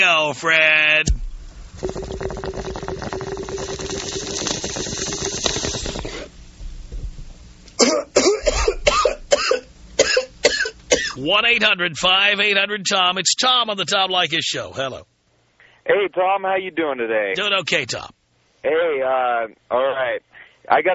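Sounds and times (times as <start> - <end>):
speech: 0.0 - 1.1, 1.8 - 2.4, 11.3 - 15.1, 15.9 - 20.9
bong hit bubbling: 1.1 - 9.6
person coughing: 7.8 - 11.2.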